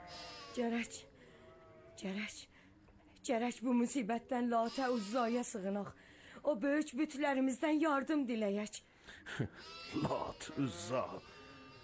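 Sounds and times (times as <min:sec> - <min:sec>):
lambs bleating in the flocks: 0:00.0 - 0:02.0, 0:04.6 - 0:05.6, 0:09.6 - 0:11.8
speech: 0:00.6 - 0:01.1, 0:02.0 - 0:02.5, 0:03.2 - 0:11.4.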